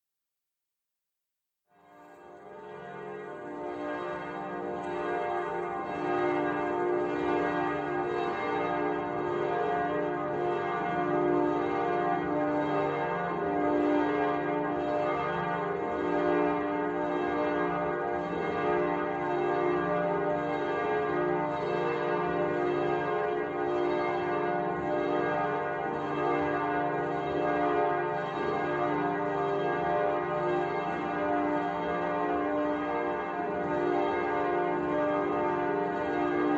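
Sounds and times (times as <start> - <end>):
church bells ringing: 2.0 - 36.5.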